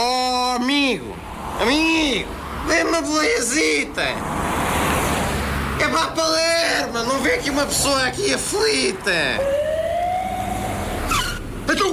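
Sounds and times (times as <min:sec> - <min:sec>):
vehicle rumble: 0:00.0 - 0:11.9
speech: 0:00.9 - 0:04.5, 0:05.8 - 0:09.7
ambulance siren wailing: 0:08.1 - 0:11.4.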